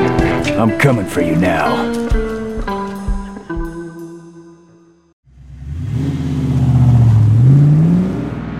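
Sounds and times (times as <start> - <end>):
sustained musical notes: 0.0 - 5.1
speech: 0.6 - 2.3
rented car engine starting and revving as it accelerates away: 5.3 - 8.5.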